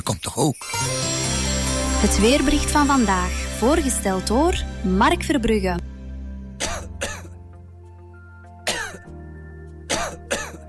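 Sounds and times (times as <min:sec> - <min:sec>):
speech: 0:00.0 - 0:01.1, 0:02.0 - 0:05.9
dry cough from a sore throat: 0:06.6 - 0:07.4, 0:08.6 - 0:09.1, 0:09.9 - 0:10.6
throat clearing: 0:08.7 - 0:09.1, 0:09.9 - 0:10.6.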